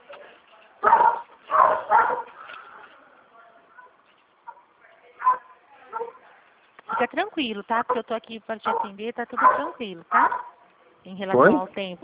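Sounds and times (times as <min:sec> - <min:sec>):
pet dog barking: 0:00.8 - 0:02.4, 0:04.5 - 0:06.2, 0:08.7 - 0:10.6
speech: 0:07.0 - 0:12.0.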